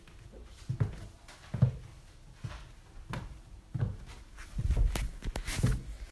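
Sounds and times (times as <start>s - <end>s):
walking on wood: 0.0s - 6.0s.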